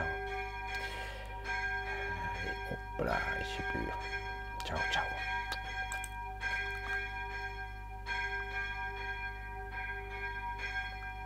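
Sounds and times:
church bells ringing: 0.0s - 11.2s
speech: 3.0s - 5.4s.

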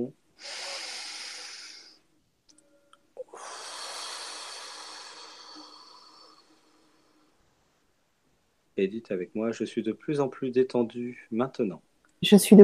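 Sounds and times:
speech: 0.0s - 0.7s, 8.8s - 12.6s
deep breath in and out during a guided relaxation session: 0.4s - 2.1s, 3.2s - 7.6s.

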